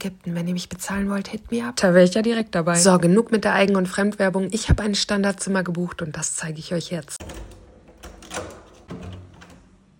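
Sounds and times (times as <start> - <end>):
speech: 0.0 - 7.6
hotel room door handle and latch click: 7.2 - 9.7.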